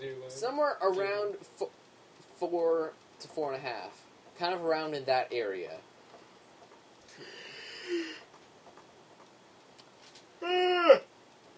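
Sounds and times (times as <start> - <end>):
speech: 0.3 - 1.8, 2.4 - 5.9, 10.4 - 11.1
person yawning: 7.2 - 8.2, 10.4 - 11.1
short loud voiced groan: 7.2 - 8.3, 10.4 - 11.1.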